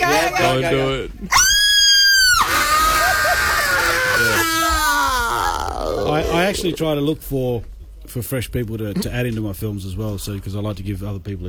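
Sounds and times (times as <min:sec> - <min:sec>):
speech: 0:00.4 - 0:01.4, 0:06.4 - 0:11.4
woman screaming loudly: 0:01.3 - 0:06.4
strained wavering vocal sounds: 0:05.2 - 0:07.0.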